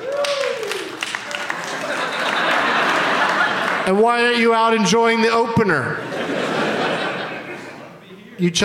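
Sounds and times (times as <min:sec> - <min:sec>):
person whooping or cheering: 0:00.0 - 0:01.1
live audience applause: 0:00.0 - 0:04.0
laughter: 0:01.2 - 0:04.4, 0:05.9 - 0:08.1
speech: 0:03.9 - 0:06.4, 0:08.4 - 0:08.6.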